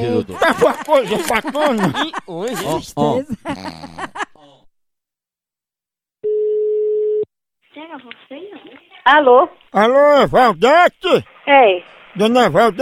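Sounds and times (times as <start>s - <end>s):
speech: 0.0s - 4.2s, 7.8s - 12.8s
laughter: 0.0s - 4.7s
phone line ringback tone as a call is placed: 6.2s - 7.3s.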